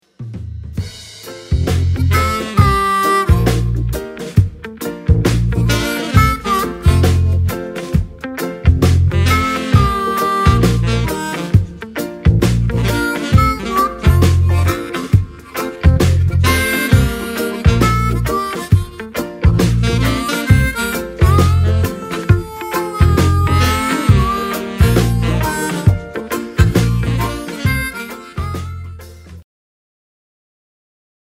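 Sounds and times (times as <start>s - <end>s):
reggae piano: 0.2s - 29.4s
reggae organ: 1.2s - 29.4s.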